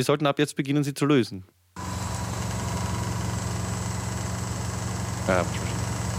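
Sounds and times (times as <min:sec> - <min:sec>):
speech: 0:00.0 - 0:01.9, 0:05.3 - 0:05.8
microwave oven running with a low buzzing tone and fan whir: 0:01.8 - 0:06.1.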